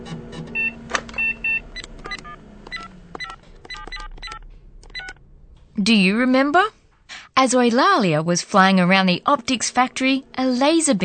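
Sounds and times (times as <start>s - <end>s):
low hum: 0.0s - 11.0s
mobile phone keypad beeps as a number is dialled: 0.6s - 5.2s
speech: 5.8s - 6.8s, 7.4s - 11.0s.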